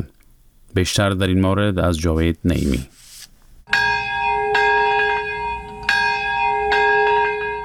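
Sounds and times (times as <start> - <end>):
speech: 0.8 - 3.0
memorial bells ringing at a ceremony in Nagasaki Japan: 3.7 - 7.6.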